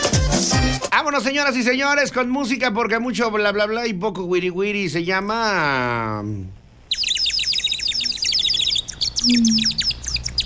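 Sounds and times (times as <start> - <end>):
speech: 1.0 - 6.6, 9.2 - 9.8
dense flock of small birds chirping: 6.6 - 10.4.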